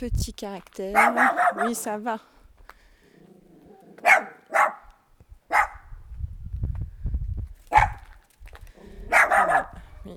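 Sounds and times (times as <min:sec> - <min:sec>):
speech: 0:00.0 - 0:02.4
small dog barking: 0:00.9 - 0:01.9, 0:03.8 - 0:04.9, 0:05.5 - 0:05.9, 0:07.7 - 0:08.1, 0:09.0 - 0:09.9.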